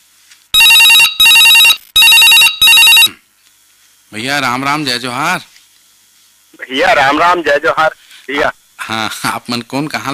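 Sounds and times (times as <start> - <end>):
telephone ringing with electronic double-ring trill: 0.6 - 3.2
speech: 4.1 - 5.5, 6.7 - 10.1.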